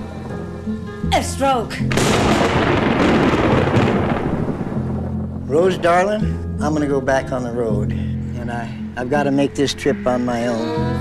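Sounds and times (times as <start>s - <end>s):
speech: 0.7s - 3.5s, 5.5s - 11.0s
loud roll of thunder during a lightning storm: 1.9s - 6.4s.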